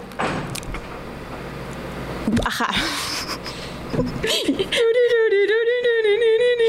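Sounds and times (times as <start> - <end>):
low steady hum: 0.0 - 6.6
dressing room door swinging shut with a thud and rattle: 0.2 - 0.6
speech: 2.3 - 3.1, 4.0 - 5.6.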